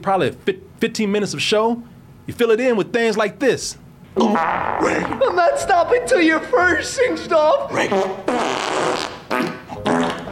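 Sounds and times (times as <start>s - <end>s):
speech: 0.0s - 9.1s
loud buzzy farting: 4.2s - 5.2s, 7.8s - 10.3s.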